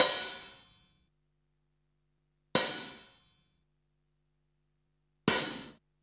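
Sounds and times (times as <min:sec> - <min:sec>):
open hi-hats: 0:00.0 - 0:01.0, 0:02.6 - 0:03.4, 0:05.3 - 0:05.8.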